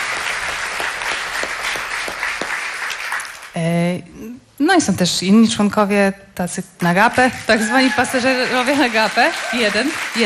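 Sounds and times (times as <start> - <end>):
audience applause at a live concert: 0.0 - 3.5, 7.4 - 10.2
speech: 3.6 - 4.1, 4.7 - 10.2.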